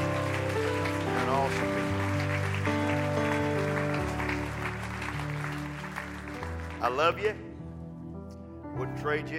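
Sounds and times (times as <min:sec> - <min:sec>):
crowd clapping in applause: 0:00.0 - 0:07.4
speech: 0:06.9 - 0:07.5, 0:08.8 - 0:09.3.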